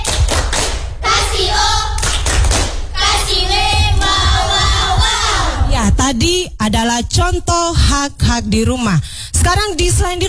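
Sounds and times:
group of children shouting a chanted cheer: 0:00.0 - 0:00.4, 0:01.0 - 0:02.0, 0:03.0 - 0:05.7
group of children clapping: 0:00.0 - 0:00.8, 0:02.0 - 0:02.8
speech: 0:06.4 - 0:10.2.

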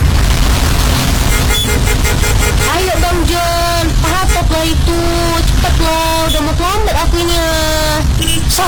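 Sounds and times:
car engines idling: 0:00.0 - 0:08.2
dense traffic rumble: 0:00.0 - 0:08.6
car horn toots in traffic jam: 0:01.1 - 0:04.8, 0:08.2 - 0:08.5.

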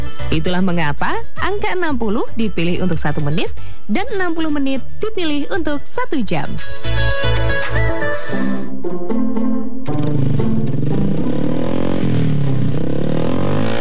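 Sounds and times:
speech: 0:00.3 - 0:08.6
motorcycle with racing exhaust revving: 0:08.4 - 0:13.7.

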